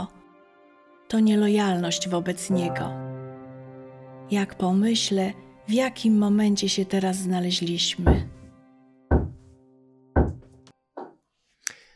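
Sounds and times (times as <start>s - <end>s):
speech: 1.1s - 3.0s, 4.3s - 8.4s
heavy knocks on a door: 8.0s - 8.4s, 9.1s - 9.5s, 10.2s - 11.2s.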